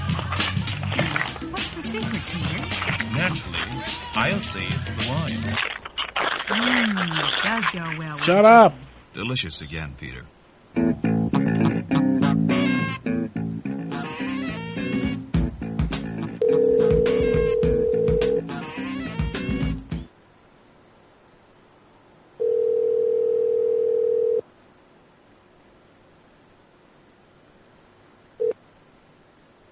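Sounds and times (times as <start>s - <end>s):
busy music-like sounds: 0.0s - 5.6s, 10.8s - 20.1s
speech: 1.9s - 5.8s, 6.5s - 11.0s
telephone ringing tone on outgoing call: 16.4s - 18.4s, 22.4s - 24.4s.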